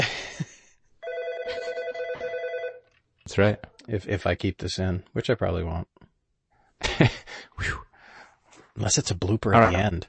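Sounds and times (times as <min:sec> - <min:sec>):
telephone ringing with a bright electronic tone: 0:01.0 - 0:02.9
speech: 0:03.3 - 0:06.0, 0:06.9 - 0:07.8, 0:08.8 - 0:10.0.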